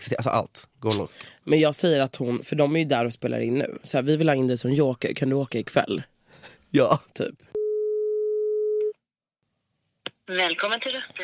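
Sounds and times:
speech: 0.1s - 7.5s, 10.3s - 11.2s
telephone ringback tone: 7.6s - 8.9s.

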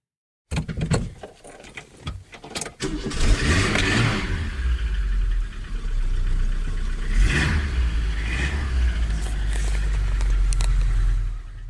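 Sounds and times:
car engine cranking, starting and revving: 2.8s - 11.6s.

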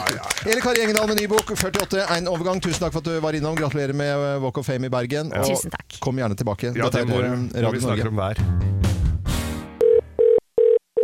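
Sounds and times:
speech: 0.4s - 8.8s
telephone in a radio studio ringing with electronic beeps: 9.8s - 11.0s.

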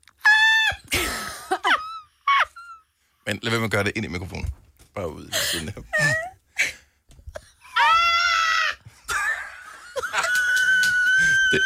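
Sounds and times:
laughter: 0.9s - 2.7s, 9.1s - 10.8s
speech: 3.3s - 6.3s
person attempting a scream: 7.8s - 11.6s.

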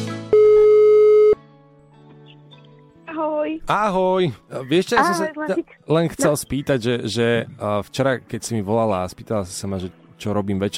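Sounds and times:
telephone beep while placing a call: 0.3s - 1.4s
speech: 3.6s - 10.7s.

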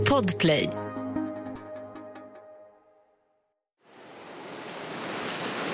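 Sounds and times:
speech: 0.2s - 0.8s
light rain falling on the sea: 3.8s - 5.7s.

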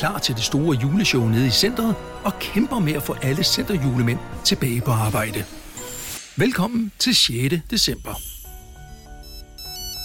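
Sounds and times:
speech: 0.0s - 5.6s, 6.4s - 8.3s
telephone ringing with a bright melodic electronic ringtone: 8.8s - 10.0s.

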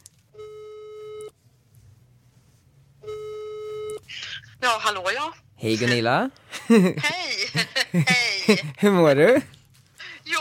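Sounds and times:
electronic ringback tone from an outgoing phone call: 0.4s - 1.3s, 3.0s - 4.0s
speech: 4.6s - 9.6s
laughter: 6.5s - 8.9s.

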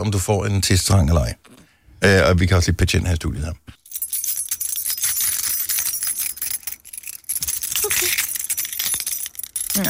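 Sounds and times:
speech: 0.0s - 3.8s
bunch of keys jangling and rattling: 3.8s - 9.8s.

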